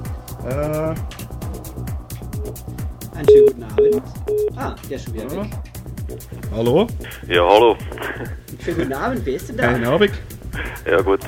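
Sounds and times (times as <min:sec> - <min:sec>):
speech: 0:00.4 - 0:01.3, 0:02.5 - 0:11.2
incoming telephone call connecting with short beeps: 0:03.3 - 0:04.6.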